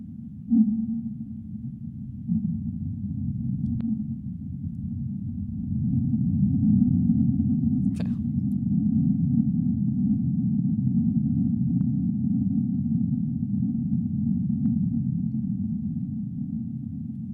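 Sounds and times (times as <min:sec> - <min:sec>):
sped-up earthquake rumble: 0:00.0 - 0:17.3
sped-up whale calls: 0:00.5 - 0:01.5.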